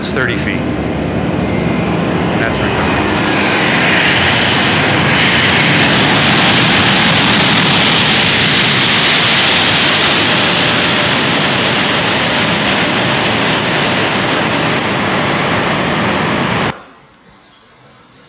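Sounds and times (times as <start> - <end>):
faltering aircraft engine roaring: 0.0 - 17.2
speech: 0.1 - 0.9, 2.4 - 3.2.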